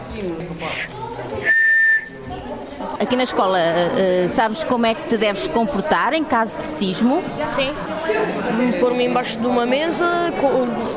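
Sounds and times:
indistinct voices and chatter: 0.0 - 10.9
speech: 0.2 - 1.6, 2.8 - 10.9
shrill blast from an emergency whistle at a school: 1.4 - 2.2.

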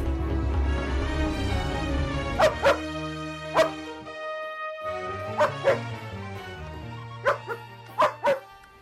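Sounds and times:
orchestral film music: 0.0 - 8.8
police dog barking sharply in a film scene: 2.4 - 2.9, 3.5 - 3.8, 5.3 - 5.9, 7.2 - 8.5.

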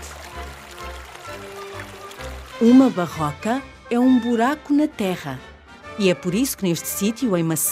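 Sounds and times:
water trickling from a rock spring: 0.0 - 3.3
speech: 2.6 - 7.7.

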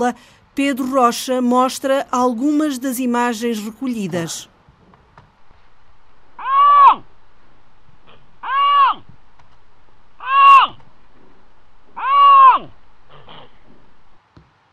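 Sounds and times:
speech: 0.0 - 4.5
Iberian lynx calling with drawn-out tonal wails: 6.4 - 7.1, 8.0 - 9.1, 10.2 - 10.8, 12.0 - 13.6.

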